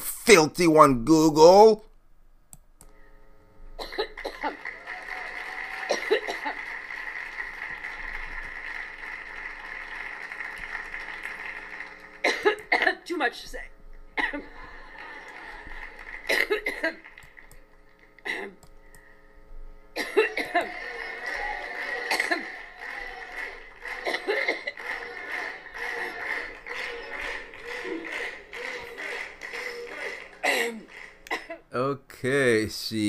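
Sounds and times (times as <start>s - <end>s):
steady hum: 0.0s - 33.0s
speech: 0.3s - 1.9s, 13.2s - 14.5s, 16.4s - 17.1s, 32.2s - 33.0s
person coughing uncontrollably in a prolonged coughing fit at Mansfield College: 3.8s - 4.6s, 5.9s - 6.6s, 12.2s - 13.0s, 14.2s - 14.4s, 16.3s - 17.0s, 18.3s - 18.6s, 20.0s - 20.7s, 22.1s - 22.5s, 24.0s - 24.8s, 30.4s - 31.7s
laughter: 14.4s - 17.1s, 20.2s - 31.0s.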